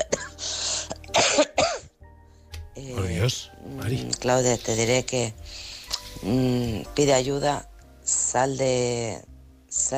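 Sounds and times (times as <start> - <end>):
woman coughing in harsh rough bursts: 0.0 - 1.9
speech: 4.2 - 5.6, 6.2 - 7.7, 8.3 - 9.9.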